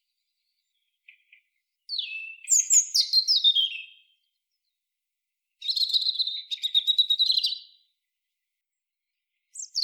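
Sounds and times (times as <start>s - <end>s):
European robin singing, Erithacus rubecula: 0.0s - 4.6s, 5.6s - 7.8s, 9.5s - 9.8s.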